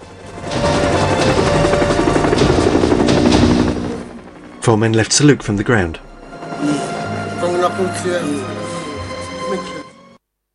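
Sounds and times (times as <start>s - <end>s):
helicopter rising into the air: 0.0s - 8.1s
speech: 4.7s - 6.8s, 7.8s - 8.7s, 9.5s - 9.7s.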